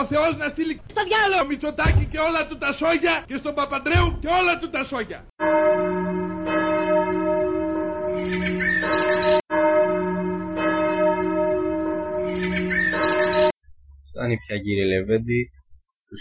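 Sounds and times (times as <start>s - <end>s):
speech: 0.0s - 6.2s, 14.2s - 16.1s
church bells ringing: 5.4s - 13.6s.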